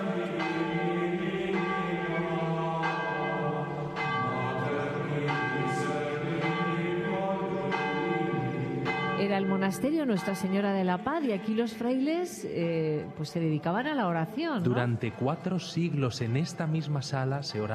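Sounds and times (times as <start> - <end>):
church bells ringing: 0.0 - 13.4
speech: 9.4 - 17.7.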